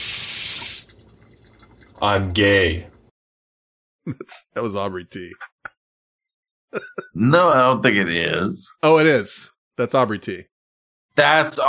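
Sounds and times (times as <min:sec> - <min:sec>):
water running from a faucet: 0:00.0 - 0:03.1
speech: 0:02.0 - 0:02.9, 0:04.0 - 0:05.5, 0:06.7 - 0:10.5, 0:11.2 - 0:11.6.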